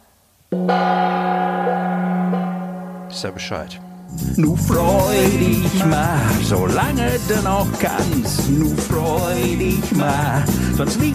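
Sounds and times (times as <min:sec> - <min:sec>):
gong struck in a cinema: 0:00.6 - 0:07.4
speech: 0:03.2 - 0:11.1.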